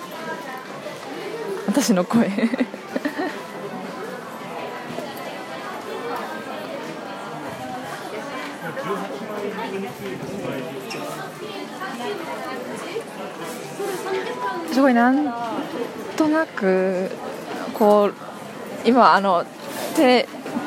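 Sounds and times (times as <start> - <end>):
indoor crowd babble in a department store basement food hall in Shinjuku: 0.0 - 20.6
speech: 1.8 - 2.8, 11.4 - 20.4
laughter: 2.1 - 3.8.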